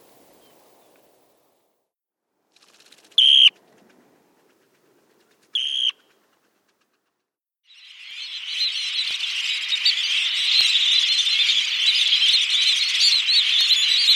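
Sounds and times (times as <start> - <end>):
Dunlin calls: 3.2 - 3.5, 5.6 - 6.1, 7.7 - 14.1.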